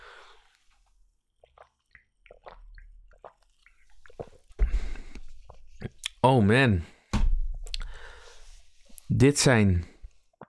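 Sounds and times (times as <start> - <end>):
louder fizzy gulp of slightly fizzy drink: 1.4 - 6.2
mouth sipping a slightly fizzy drink with slurps and clicks: 1.4 - 6.2
speech: 6.2 - 6.9, 9.2 - 9.9.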